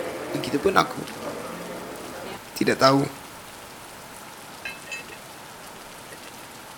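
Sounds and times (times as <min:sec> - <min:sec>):
rain falling on a surface: 0:00.0 - 0:06.7
speech: 0:00.4 - 0:01.2, 0:02.6 - 0:03.2.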